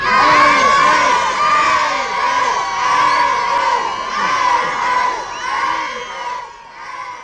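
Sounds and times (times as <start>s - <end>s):
laughter: 0.0s - 6.4s
large crowd of fans screaming and cheering as a train departs for Friedberg in Hesse: 0.0s - 7.2s.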